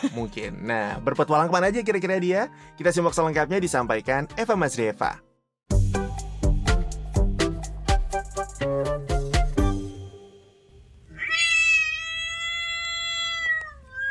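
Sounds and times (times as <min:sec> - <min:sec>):
speech: 0:00.0 - 0:05.3
rhythmic percussive thumps: 0:05.7 - 0:10.2
cat meowing: 0:11.1 - 0:14.0.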